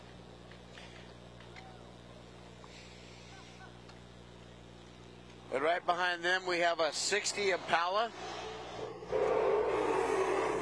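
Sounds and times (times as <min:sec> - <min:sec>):
speech: 0:05.6 - 0:08.4
classic car engine revving: 0:07.0 - 0:10.6.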